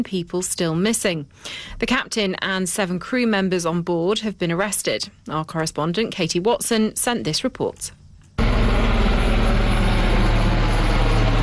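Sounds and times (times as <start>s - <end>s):
speech: 0.0s - 8.0s
helicopter flying overhead: 8.4s - 11.4s.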